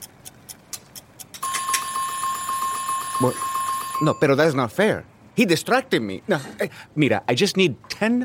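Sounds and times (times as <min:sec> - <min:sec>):
kitchen timer ticking: 0:00.0 - 0:04.6
kitchen timer ringing: 0:01.4 - 0:04.8
speech: 0:03.2 - 0:08.2.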